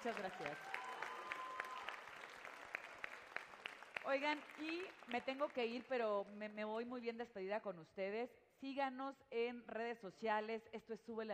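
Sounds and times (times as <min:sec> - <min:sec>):
speech: 0:00.0 - 0:00.8, 0:04.0 - 0:11.3
applause for a group of high school students: 0:00.0 - 0:06.4.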